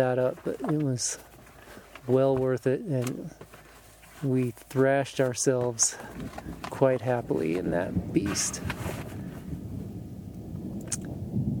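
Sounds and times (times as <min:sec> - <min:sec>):
speech: 0:00.0 - 0:01.3, 0:02.1 - 0:03.5, 0:04.2 - 0:09.1
distant thunder rumbling outside on a day of rain showers: 0:06.0 - 0:11.5.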